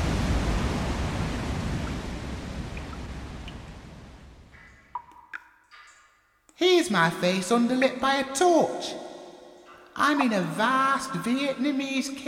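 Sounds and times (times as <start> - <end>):
rushing waterfall roar heard from the top of the waterfall: 0.0 - 4.3
speech: 6.8 - 9.0, 10.0 - 12.2.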